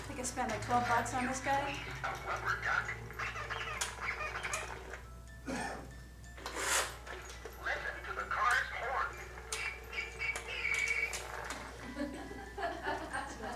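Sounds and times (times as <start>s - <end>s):
speech: 0.2s - 3.1s
antique toy making raspy duck-like quacks and honks: 1.7s - 5.0s, 7.7s - 11.7s
laughter: 11.7s - 13.5s.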